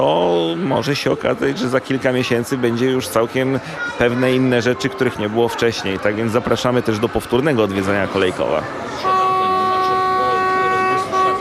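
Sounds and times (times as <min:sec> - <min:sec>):
speech: 0:00.0 - 0:09.1
train setting off on a route toward Wrocław: 0:09.0 - 0:11.3.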